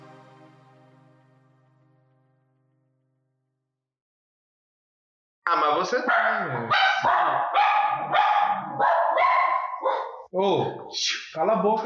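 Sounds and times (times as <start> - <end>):
speech: 5.5 - 11.8
dogs barking: 6.0 - 10.3.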